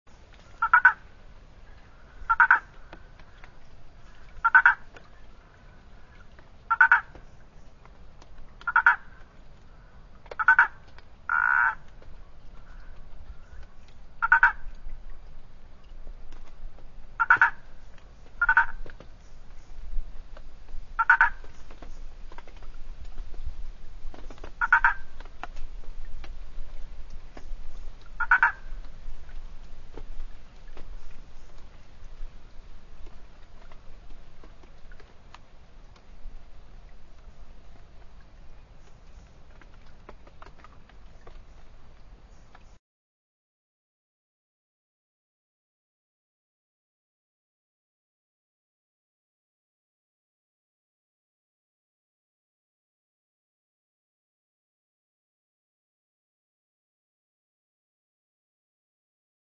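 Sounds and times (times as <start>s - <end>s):
Boana prasina: 0.5s - 1.1s, 1.7s - 7.2s, 8.6s - 11.9s, 12.6s - 14.8s, 17.2s - 19.0s, 21.0s - 21.9s, 24.6s - 25.6s, 28.1s - 29.4s.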